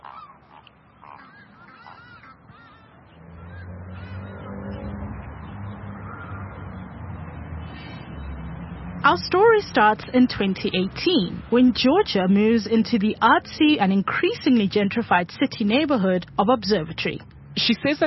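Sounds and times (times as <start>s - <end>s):
geese honking by a river: 0.0s - 4.5s
speech: 9.0s - 18.0s.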